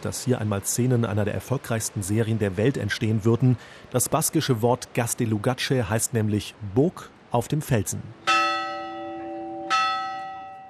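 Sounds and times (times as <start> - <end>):
speech: 0.0 - 8.3
small chapel bell on the rocky Basque island of Gastelugatche, Spain, being struck: 8.3 - 10.6.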